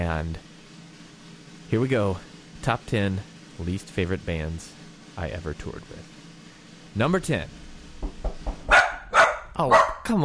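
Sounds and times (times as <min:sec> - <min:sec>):
speech: 0:00.0 - 0:00.5, 0:01.7 - 0:06.2, 0:06.9 - 0:07.6, 0:09.6 - 0:10.2
dog barking: 0:08.7 - 0:10.1.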